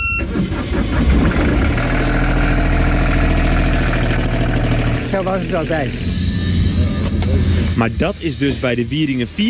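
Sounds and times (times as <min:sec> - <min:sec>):
old diesel engine of a wooden fishing boat starting and idling: 0:00.0 - 0:09.4
speech: 0:05.2 - 0:06.2, 0:07.8 - 0:09.4.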